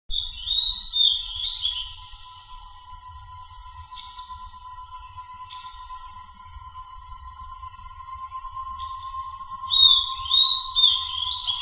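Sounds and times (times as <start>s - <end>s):
Corythopis delalandi calling: 0.1s - 4.2s, 9.7s - 11.5s.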